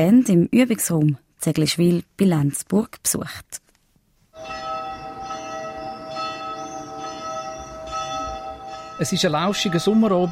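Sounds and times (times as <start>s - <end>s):
speech: 0.0s - 3.6s, 9.0s - 10.3s
church bells ringing in a village: 4.4s - 10.3s.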